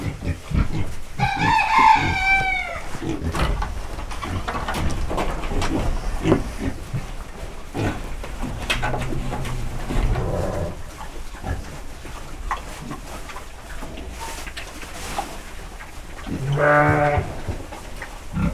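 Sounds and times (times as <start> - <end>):
pigs eating in a stable: 0.0 - 18.5
rooster in a farmyard: 1.2 - 3.0
sheep in a farmyard: 16.4 - 17.4.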